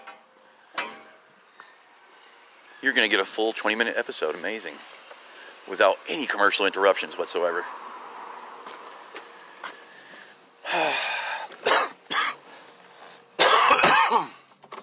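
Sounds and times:
speech: 2.8 - 5.0, 5.7 - 7.8
harsh coughing: 10.6 - 12.4, 13.4 - 14.4
throat clearing: 13.4 - 14.4.

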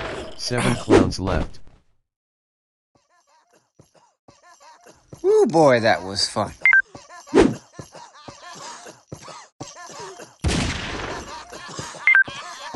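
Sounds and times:
laughter: 0.4 - 1.1, 3.0 - 5.1, 6.5 - 10.4, 11.0 - 12.7
speech: 0.4 - 1.6, 5.2 - 6.7
gunshots from a mobile shooting video game: 10.4 - 11.6.

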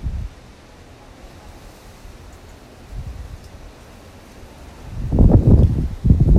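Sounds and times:
strong wind blowing in gusts: 0.0 - 6.3.

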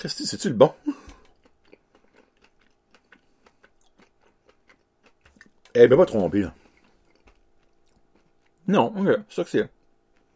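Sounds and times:
speech: 0.0 - 1.0, 5.8 - 6.6, 8.7 - 9.8
crunchy chewing of a dark-chocolate-covered peanut: 1.0 - 8.7, 9.7 - 10.3.

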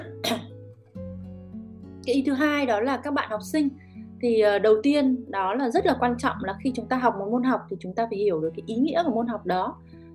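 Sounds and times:
female teacher coughing: 0.0 - 0.5
speech: 0.2 - 0.5, 2.1 - 10.0.

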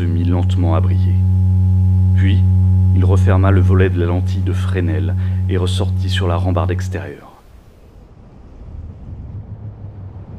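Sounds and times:
speech: 0.4 - 1.2, 2.2 - 7.3
strong wind blowing at a lighthouse at night: 8.0 - 10.3.

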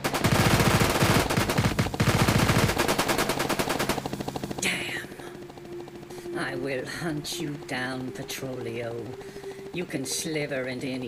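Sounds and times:
rapid automatic gunfire aimed at a man fleeing across a rooftop: 0.0 - 4.4
speech: 6.4 - 11.0.

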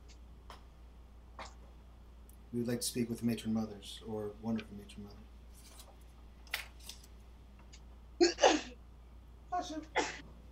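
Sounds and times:
speech: 2.5 - 5.3, 9.7 - 10.1
sneezes: 9.9 - 10.2.

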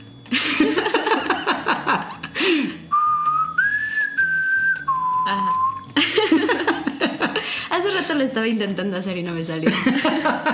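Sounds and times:
laughter: 0.3 - 2.4, 6.0 - 7.5, 9.6 - 10.5
person whistling a film signal tune: 2.8 - 6.0
speech: 8.1 - 10.5.

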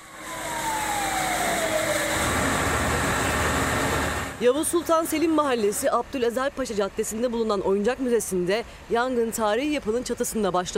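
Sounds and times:
fire engine siren wailing on the way to a historic toy museum fire: 0.0 - 4.4
heavy rumble of engines and traffic: 0.0 - 7.3
speech: 4.4 - 10.7.

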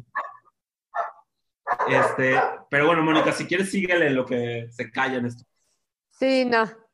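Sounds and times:
dog barking: 0.0 - 3.5
speech: 1.9 - 5.5, 6.2 - 6.8.

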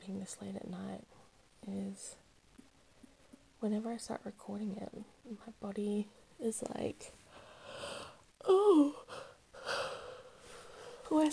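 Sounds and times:
speech: 0.1 - 2.2, 3.6 - 9.0, 11.1 - 11.3
yawn from someone tired late at night: 8.4 - 10.2.

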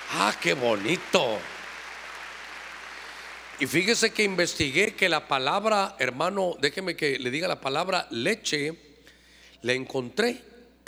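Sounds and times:
audience clapping loudly during a sermon: 0.0 - 4.8
speech: 0.1 - 1.5, 3.6 - 8.9, 9.6 - 10.8.

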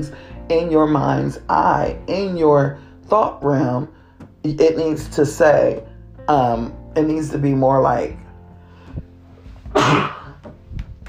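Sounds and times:
speech: 0.0 - 8.2
person sneezing: 9.7 - 10.4.

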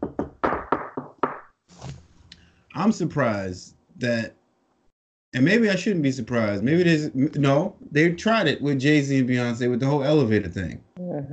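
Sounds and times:
knuckles knocking on wood: 0.0 - 1.4
speech: 2.8 - 4.4, 5.3 - 11.3.

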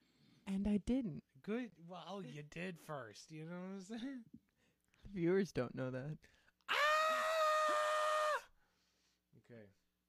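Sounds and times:
speech: 0.5 - 4.4, 5.0 - 6.4, 9.5 - 9.8
man screaming: 6.7 - 8.5.

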